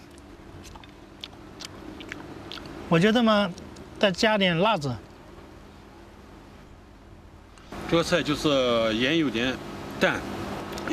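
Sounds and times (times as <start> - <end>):
chewing a bite of stir-fried gourd with meat: 0.0 - 2.8
low steady hum: 0.0 - 10.9
speech: 2.9 - 5.1, 7.9 - 10.9.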